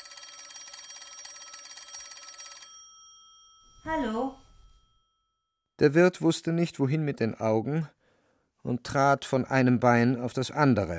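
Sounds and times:
old-style telephone bell ringing in a hallway: 0.0 - 5.6
speech: 3.8 - 4.4, 5.8 - 8.0, 8.6 - 10.9.

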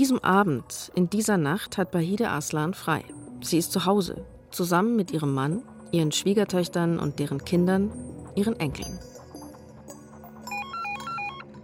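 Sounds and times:
speech: 0.0 - 9.1
electronic telephone ringing at the volunteer fire brigade in Mölln: 10.4 - 11.6.

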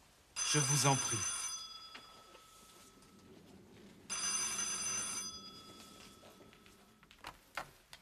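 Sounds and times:
telephone bell ringing: 0.4 - 3.3, 4.0 - 7.0
speech: 0.5 - 1.4.

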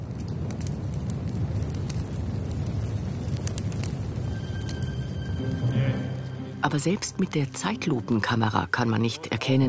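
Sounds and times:
Christmas tree burning with a roar of flames: 0.0 - 6.3
crackles and pops of a burning Christmas tree: 0.0 - 9.6
speech: 6.6 - 9.6.

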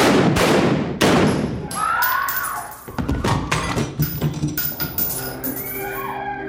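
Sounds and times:
loud sharp gunshots in a school-shooting scene: 0.0 - 1.6
faint cries or shouts of screaming students: 1.6 - 3.4, 5.6 - 6.4.

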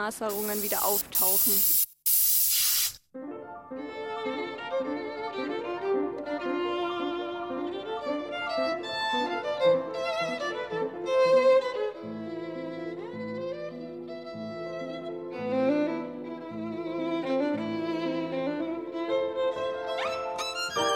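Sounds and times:
speech: 0.0 - 1.8
spray paint can hissing: 0.3 - 3.0
music: 3.1 - 20.9.

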